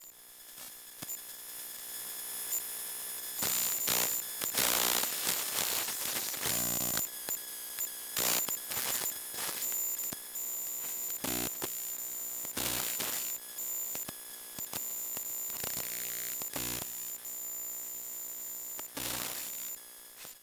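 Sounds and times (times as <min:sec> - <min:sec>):
Macbook electromagnetic noise: 0:03.4 - 0:19.8.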